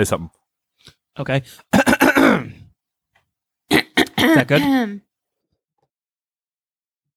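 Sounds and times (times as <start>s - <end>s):
speech: 0.0s - 2.6s, 4.3s - 5.1s
voice imitating someone clearing their throat: 1.7s - 2.7s, 3.7s - 5.0s.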